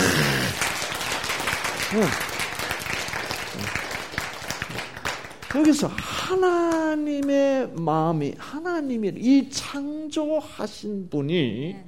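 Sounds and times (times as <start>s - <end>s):
room full of people applauding: 0.0s - 6.8s
speech: 1.9s - 2.3s, 5.6s - 11.8s.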